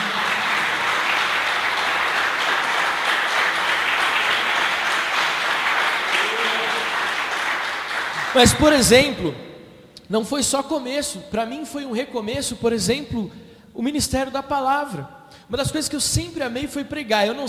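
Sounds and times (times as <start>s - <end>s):
large crowd applauding in a hall: 0.0s - 9.2s
speech: 8.4s - 9.5s, 10.1s - 17.4s.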